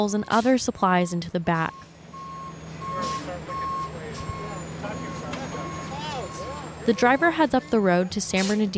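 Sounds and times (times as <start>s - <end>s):
speech: 0.0s - 1.9s, 6.9s - 8.7s
delivery truck reversing alarm beeping: 0.0s - 8.7s
low engine rumble: 0.0s - 8.7s.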